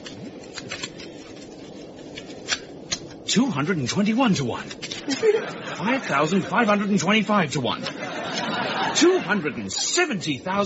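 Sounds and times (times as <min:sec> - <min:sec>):
deck of playing cards being shuffled: 0:00.0 - 0:03.3, 0:04.0 - 0:05.4
speech: 0:03.4 - 0:08.1, 0:09.0 - 0:10.6
laughter: 0:05.0 - 0:10.1.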